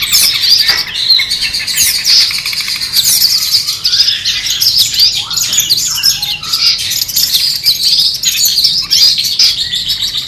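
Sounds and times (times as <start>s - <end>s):
long-tailed shrike competition-style song: 0.0s - 10.2s.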